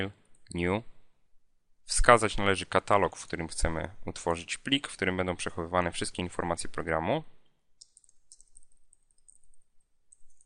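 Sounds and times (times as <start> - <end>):
speech: 0.0 - 0.9, 1.9 - 7.4
computer keyboard typing: 7.8 - 10.4
computer mouse clicks: 7.8 - 10.4.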